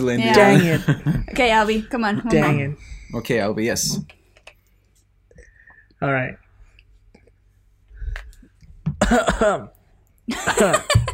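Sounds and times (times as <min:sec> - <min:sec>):
speech: 0:00.0 - 0:04.2, 0:06.0 - 0:06.4, 0:09.1 - 0:11.0
deliberate put-on cough: 0:09.0 - 0:09.8.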